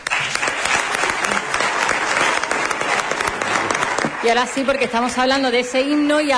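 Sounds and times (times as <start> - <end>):
audience applause: 0.0 - 5.0
speech: 4.2 - 6.3.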